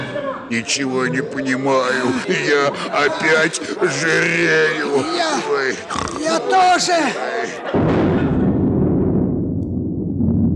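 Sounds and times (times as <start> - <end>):
speech: 0.5 - 8.1
laughter: 0.8 - 8.5
cannon fire boom: 7.8 - 10.5
low rumble: 7.8 - 10.5.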